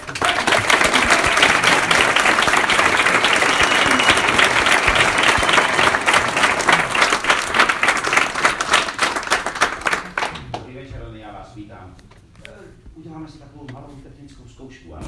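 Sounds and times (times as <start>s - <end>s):
large crowd applauding: 0.0s - 10.6s.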